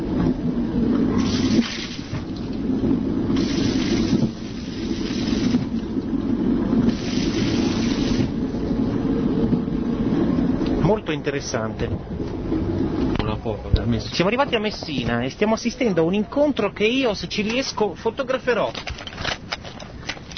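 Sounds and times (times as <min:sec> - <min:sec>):
constant low mechanical rumble: 0:00.0 - 0:20.3
train toilet flushing with surges of rushing water and air: 0:01.0 - 0:08.6
speech: 0:11.2 - 0:12.4, 0:13.5 - 0:19.0.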